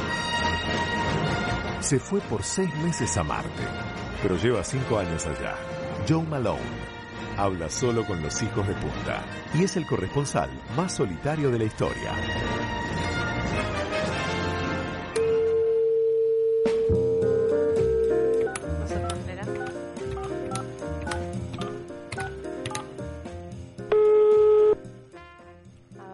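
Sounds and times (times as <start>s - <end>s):
music with keyboard notes and percussive clicks: 0.0s - 26.1s
speech: 1.8s - 12.8s
telephone ringback tones: 15.2s - 18.6s, 23.9s - 24.8s.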